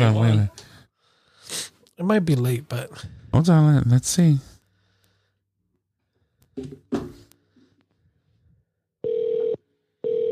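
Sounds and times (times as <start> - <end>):
speech: 0.0 - 0.7, 2.0 - 4.5, 6.6 - 7.1
phone line ringing tone: 9.0 - 10.3.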